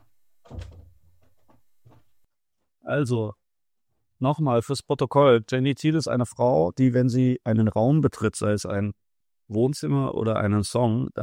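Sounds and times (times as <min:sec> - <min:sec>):
door pushed shut with a dull low thud: 0:00.0 - 0:02.2
speech: 0:02.9 - 0:03.4, 0:04.2 - 0:11.2.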